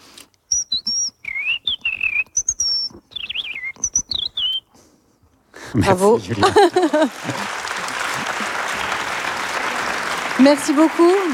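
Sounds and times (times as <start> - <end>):
person whistling an imitation of a European robin's song: 0.5 - 4.8
laughter: 5.6 - 11.3
speech: 5.7 - 7.6, 10.4 - 11.3.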